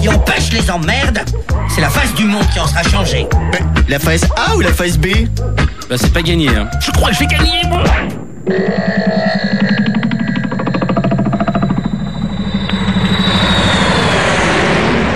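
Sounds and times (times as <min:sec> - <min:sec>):
speech: 0:00.0 - 0:09.6
airplane engine drone inside the cabin: 0:09.3 - 0:15.1
faint high whine: 0:10.5 - 0:15.1.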